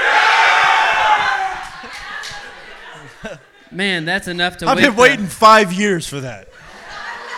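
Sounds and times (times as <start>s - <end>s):
crowd of men in a room shouting in unison: 0.0s - 3.1s
scattered cheers and laughter: 0.0s - 3.7s, 6.5s - 7.3s
speech: 3.8s - 6.6s.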